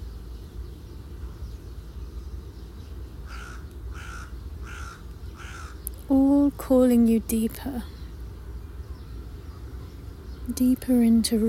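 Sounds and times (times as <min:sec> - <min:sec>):
crow cawing: 0:03.2 - 0:05.8
speech: 0:06.1 - 0:08.0, 0:10.6 - 0:11.4.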